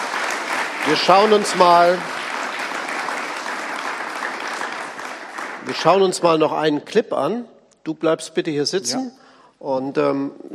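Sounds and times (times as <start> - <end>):
audience applause: 0.0 - 6.5
speech: 0.9 - 2.2, 5.7 - 10.5.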